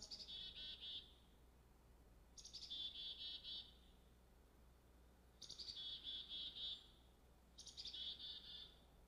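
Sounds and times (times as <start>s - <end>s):
chickadee calling with raspy repeated notes: 0.0s - 1.2s, 2.4s - 3.8s, 5.4s - 7.0s, 7.6s - 8.8s.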